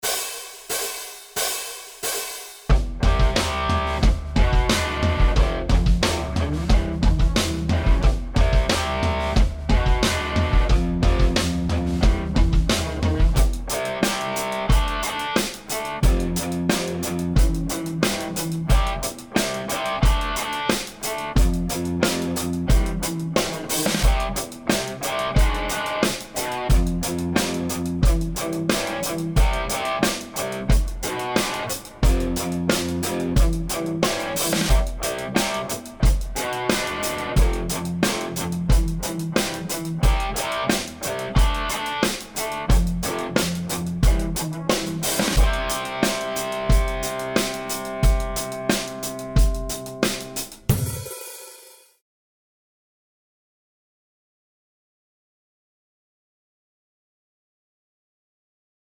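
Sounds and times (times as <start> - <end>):
slide backing track in C Hm6 F E: 2.7 - 50.6.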